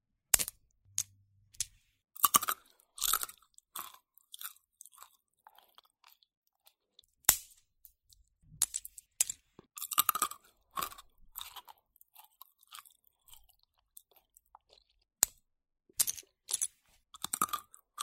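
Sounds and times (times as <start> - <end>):
chewing pistachios: 2.2 - 7.1, 9.8 - 15.0
person eating pistachios with cracking bites: 2.2 - 8.2, 9.2 - 15.4, 16.0 - 18.0.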